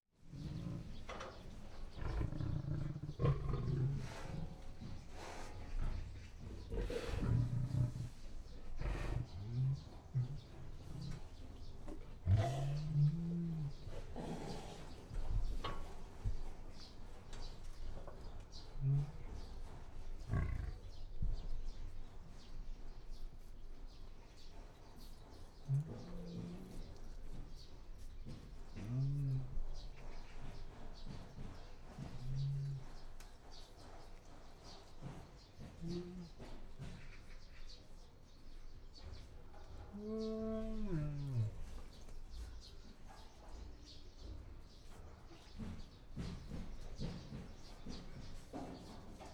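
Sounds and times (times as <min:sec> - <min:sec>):
lion in cage growling: 0:00.3 - 0:11.4, 0:12.1 - 0:14.9, 0:20.2 - 0:21.0, 0:25.6 - 0:27.0, 0:39.9 - 0:41.9
lion pacing in cage: 0:00.3 - 0:49.3.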